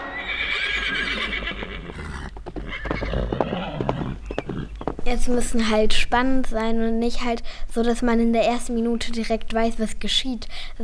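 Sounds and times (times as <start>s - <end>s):
horse neighing: 0.1s - 5.0s
horse hooves clip-clopping: 1.6s - 5.8s
speech: 5.1s - 10.8s.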